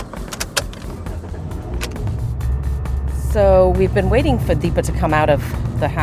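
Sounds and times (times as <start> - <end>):
sharp clicks and rattles: 0.0 - 2.4
SUV engine rumbling pulling out of driveway: 0.0 - 6.0
speech: 3.4 - 6.0.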